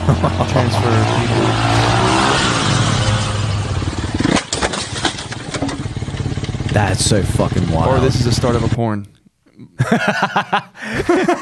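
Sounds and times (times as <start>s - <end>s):
laughter: 0.0s - 2.0s, 9.8s - 11.4s
car engine revving and accelerating: 0.0s - 8.8s
speech: 0.1s - 1.9s, 6.8s - 9.2s, 9.8s - 11.4s
car exhaust crackles and pops: 2.5s - 8.8s.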